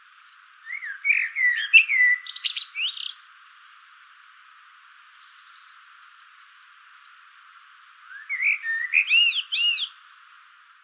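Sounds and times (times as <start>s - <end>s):
common blackbird Turdus merula fluty whistled phrase: 0.7s - 3.2s, 8.1s - 9.9s.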